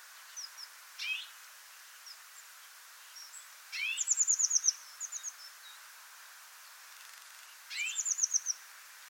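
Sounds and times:
Eurasian blue tit Cyanistes caeruleus singing: 0.2s - 1.4s, 3.1s - 5.8s, 7.7s - 8.6s.

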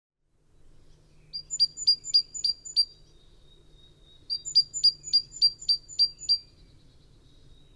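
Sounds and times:
great tit Parus major calling: 1.2s - 3.1s, 3.8s - 7.7s.

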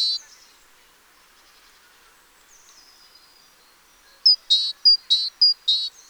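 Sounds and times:
Great tit Parus major call series: 0.0s - 0.2s, 4.3s - 5.9s.

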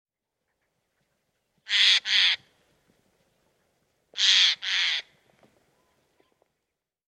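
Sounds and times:
Eurasian jay Garrulus glandarius harsh screeching calls: 1.7s - 2.4s, 4.2s - 5.1s.

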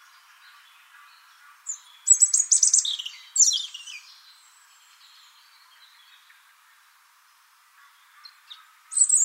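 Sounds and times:
European robin singing Erithacus rubecula: 0.0s - 6.4s, 7.8s - 9.2s.

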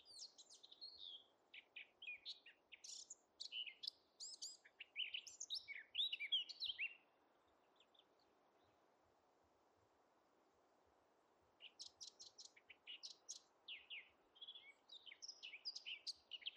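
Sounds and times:
Eurasian blackcap (Sylvia atricapilla) singing: 0.0s - 7.0s, 11.6s - 16.5s.

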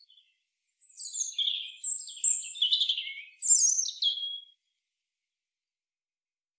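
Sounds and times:
European robin Erithacus rubecula singing twitter and sliding whistle: 0.0s - 4.6s.

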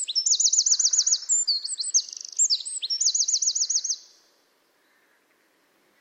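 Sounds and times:
Eurasian wren Troglodytes troglodytes singing trills and chips: 0.0s - 4.2s.

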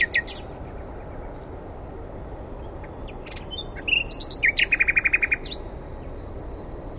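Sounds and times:
common nightingale singing: 0.0s - 1.6s, 2.6s - 6.9s
steady low background hiss: 0.0s - 6.9s.

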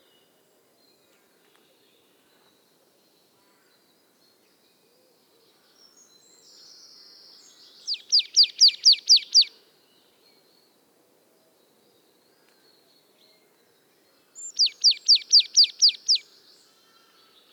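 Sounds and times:
Marsh Tit rattling song: 7.9s - 9.5s, 14.6s - 16.2s.

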